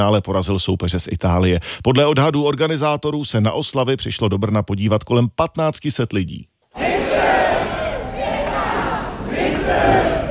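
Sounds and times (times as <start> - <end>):
speech: 0.0 - 6.5
crowd of fans cheering and chanting in unison on Jakubske namesti in Brno: 6.8 - 10.2.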